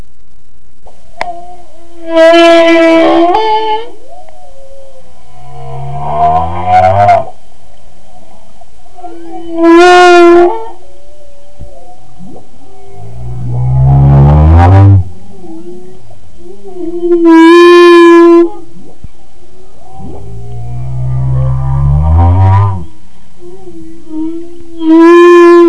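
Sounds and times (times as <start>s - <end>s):
male humpback whale: 1.2s - 4.2s, 4.9s - 7.4s, 8.1s - 19.0s, 19.7s - 25.6s.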